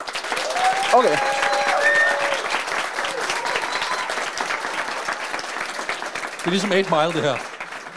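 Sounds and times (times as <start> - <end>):
audience applause: 0.0 - 7.9
whistles and cheers: 0.4 - 5.2
speech: 1.0 - 1.4, 6.4 - 7.9.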